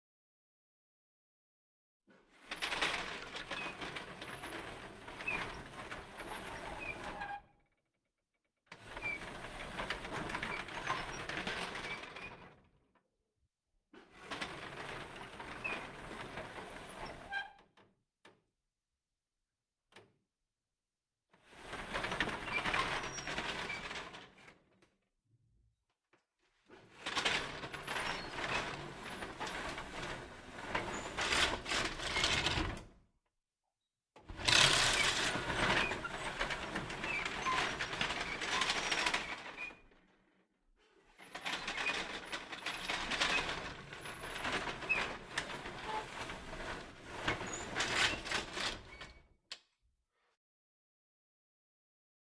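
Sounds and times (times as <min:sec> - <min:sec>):
wooden window shutter opening and closing close perspective: 0:02.4 - 0:07.7, 0:08.8 - 0:12.7, 0:14.0 - 0:17.9, 0:21.5 - 0:24.6, 0:26.6 - 0:33.0, 0:34.2 - 0:40.0, 0:41.1 - 0:49.7.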